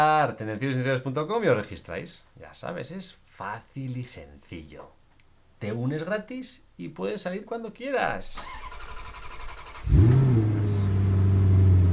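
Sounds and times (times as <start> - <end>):
speech: 0.0 - 5.0, 5.6 - 8.8
car engine cranking, starting and idling: 8.4 - 11.9.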